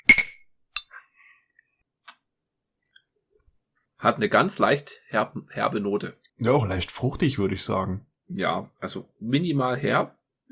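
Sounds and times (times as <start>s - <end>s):
glasses clinking in a toast: 0.0s - 1.0s
speech: 4.0s - 10.2s.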